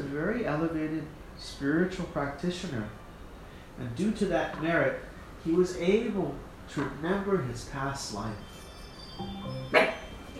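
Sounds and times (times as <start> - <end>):
speech: 0.2 - 3.0, 3.8 - 8.5, 9.2 - 10.3
dog whining: 8.4 - 10.3
dog barking: 9.7 - 10.2.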